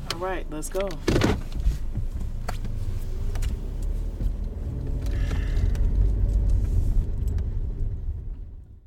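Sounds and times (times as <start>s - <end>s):
light clicks and rattles inside the car cabin: 0.0s - 6.6s
car engine rumble on a city road in Detroit Michigan USA: 0.0s - 8.8s
road noise: 0.0s - 8.8s
speech: 0.2s - 1.6s.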